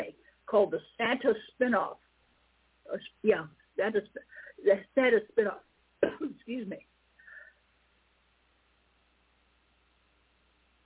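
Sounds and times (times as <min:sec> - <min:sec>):
speech: 0:00.5 - 0:02.1, 0:02.9 - 0:06.9
short coughs turned away from the microphone: 0:06.0 - 0:06.4.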